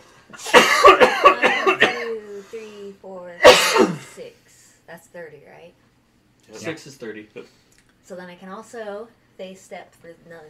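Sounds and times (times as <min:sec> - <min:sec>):
person coughing after inhaling a drink: 0:00.4 - 0:02.2, 0:03.4 - 0:04.2
speech: 0:05.1 - 0:10.4.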